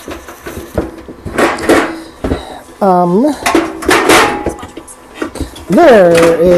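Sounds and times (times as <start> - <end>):
dishes, pots and pans clattering in a kitchen cupboard: 0.0 - 2.5, 3.3 - 6.5
speech: 2.8 - 3.6, 5.7 - 6.5.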